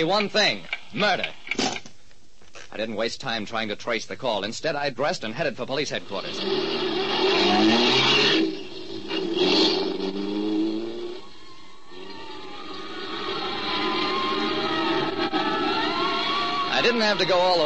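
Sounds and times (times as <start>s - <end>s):
speech: 0.0s - 1.6s, 2.7s - 8.1s, 16.9s - 17.6s
car engine revving and accelerating: 6.0s - 17.6s.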